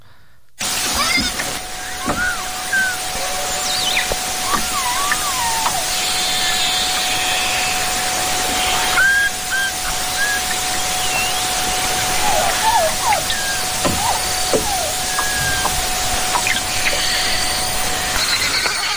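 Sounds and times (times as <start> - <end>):
constant hiss of underwater noise: 0.6 - 18.2
beluga whale song of chirps, squeaks and rising whistles: 1.7 - 7.8, 8.6 - 17.4.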